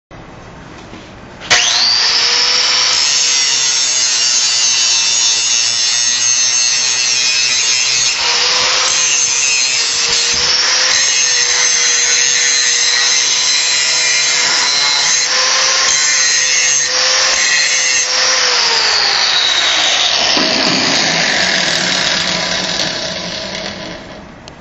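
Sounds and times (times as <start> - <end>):
angle grinder: 1.5 - 24.3.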